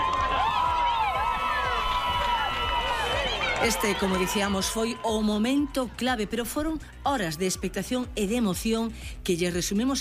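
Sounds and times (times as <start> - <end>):
crowd applause: 0.0 - 5.6
large crowd in Monforte Galicia shouting and cheering: 0.0 - 7.9
speech: 3.6 - 9.9.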